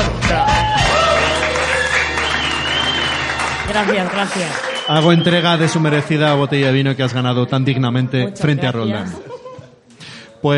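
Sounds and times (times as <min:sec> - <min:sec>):
people cheering and whooping: 0:00.2 - 0:05.9
crowd applause for the winner of a points game: 0:00.2 - 0:06.9
speech: 0:03.8 - 0:09.4.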